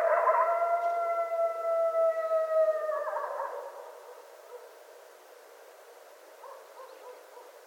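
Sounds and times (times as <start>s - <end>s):
coyotes howling: 0.0s - 4.2s.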